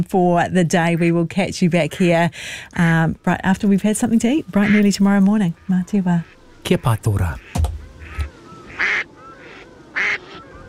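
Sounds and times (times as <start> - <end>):
speech: 0.0 - 7.7
faint noise: 0.0 - 10.6
grey duck quacking: 4.6 - 10.4.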